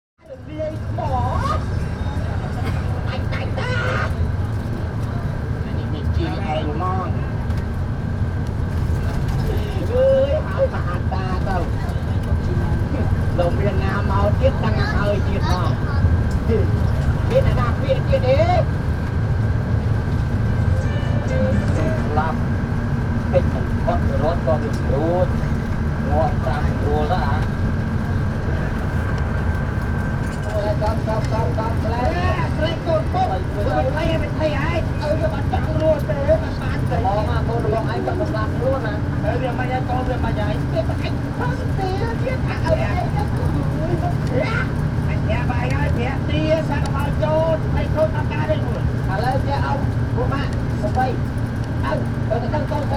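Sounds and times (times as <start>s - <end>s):
soap opera on TV in a bus in Cambodia: 0.3s - 52.9s.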